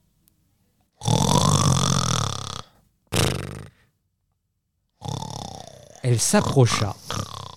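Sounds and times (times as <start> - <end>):
loud rasping snoring: 1.0 - 3.9, 5.0 - 7.5
speech: 6.0 - 7.4.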